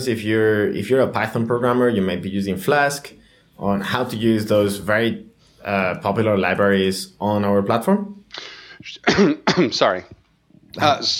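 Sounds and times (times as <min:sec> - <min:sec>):
speech: 0:00.0 - 0:10.2, 0:10.8 - 0:11.1
short throaty cough: 0:08.8 - 0:10.0.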